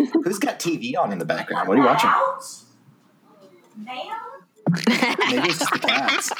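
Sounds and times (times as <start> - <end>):
laughter: 0.0 - 2.4, 4.7 - 6.3
speech: 0.2 - 2.7, 3.8 - 6.3
loud vocal noise: 1.3 - 2.6
cat meowing: 1.6 - 2.6.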